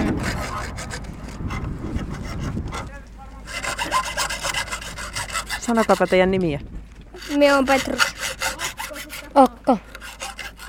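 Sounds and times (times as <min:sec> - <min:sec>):
hand saw cutting metal: 0:00.0 - 0:06.3, 0:07.1 - 0:10.6
speech: 0:05.7 - 0:06.7, 0:07.3 - 0:08.1, 0:09.4 - 0:09.9.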